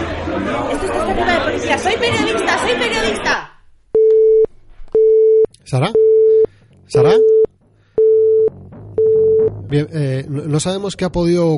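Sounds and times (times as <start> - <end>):
speech: 0.4 - 3.5, 5.7 - 6.1, 6.9 - 7.5, 9.7 - 11.5
telephone busy tone after call drops: 4.0 - 9.5.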